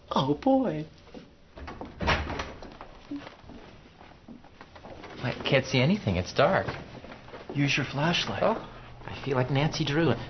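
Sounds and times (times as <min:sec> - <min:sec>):
low room noise: 0:00.0 - 0:10.2
speech: 0:00.2 - 0:01.0, 0:05.5 - 0:06.8, 0:07.6 - 0:10.2
door opening with a solid clunk and rattle: 0:01.6 - 0:02.8.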